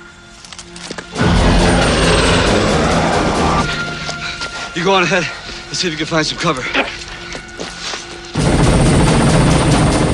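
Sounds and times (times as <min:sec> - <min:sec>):
helicopter rotor and engine roar: 0:00.5 - 0:04.7, 0:08.3 - 0:10.1
speech: 0:04.8 - 0:07.0.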